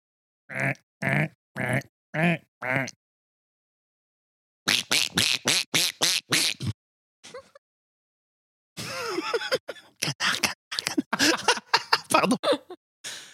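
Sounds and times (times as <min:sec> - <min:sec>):
voice imitating a duck quacking: 0:00.5 - 0:03.0, 0:04.7 - 0:06.8
laughter: 0:07.2 - 0:07.6, 0:08.8 - 0:12.8.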